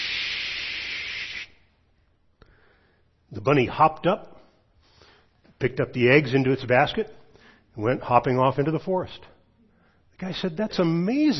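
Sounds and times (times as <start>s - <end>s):
voice imitating an aerosol can spraying: 0.0s - 1.6s
speech: 3.3s - 4.3s, 5.6s - 7.2s, 7.8s - 9.3s, 10.2s - 11.3s.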